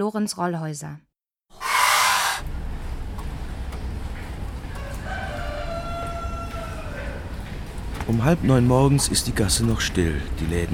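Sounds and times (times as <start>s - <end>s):
speech: 0.0s - 1.1s, 8.1s - 10.7s
two roosters crowing in a quiet alley: 1.6s - 2.5s, 4.6s - 7.6s.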